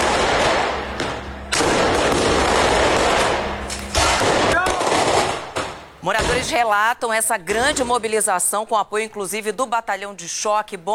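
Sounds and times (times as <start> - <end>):
firework rocket launched and exploding: 0.0 - 6.5
continuous roar and crackle of a loud outdoor scene: 0.0 - 6.8
speech: 6.5 - 10.9.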